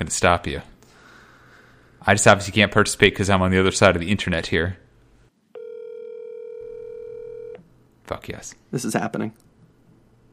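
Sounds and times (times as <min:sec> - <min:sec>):
speech: 0:00.1 - 0:00.7, 0:02.0 - 0:04.8, 0:08.1 - 0:09.5
electronic ringback tone of an outgoing phone call: 0:05.6 - 0:07.6.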